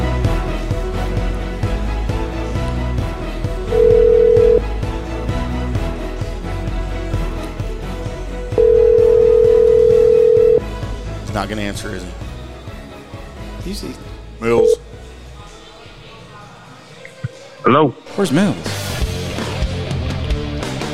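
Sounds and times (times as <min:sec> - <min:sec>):
music: 0:00.0 - 0:20.9
telephone tones from a call being dialed: 0:03.7 - 0:04.6, 0:08.6 - 0:10.6
speech: 0:11.4 - 0:12.2, 0:13.7 - 0:14.8, 0:17.7 - 0:18.9.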